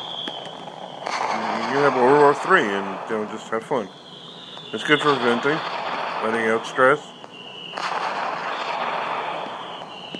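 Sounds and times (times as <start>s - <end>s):
dense crackling fireworks shimmer: 0.0s - 10.1s
synthetic app fireworks explosion effect: 0.0s - 10.1s
speech: 1.4s - 4.0s, 4.7s - 7.2s.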